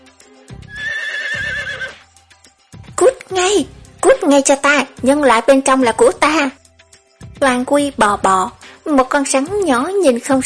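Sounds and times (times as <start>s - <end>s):
horned horse herd leader neighing: 0.7s - 2.0s
speech: 3.3s - 6.6s, 7.4s - 10.4s.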